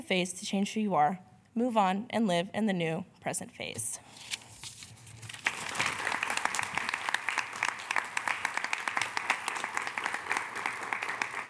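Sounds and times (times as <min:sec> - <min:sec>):
speech: 0:00.1 - 0:04.3
audience applause: 0:05.4 - 0:11.4.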